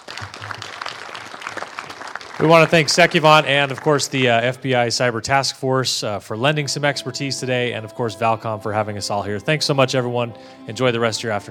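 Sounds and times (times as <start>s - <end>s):
crowd applauding: 0.0s - 5.1s
speech: 2.4s - 11.4s.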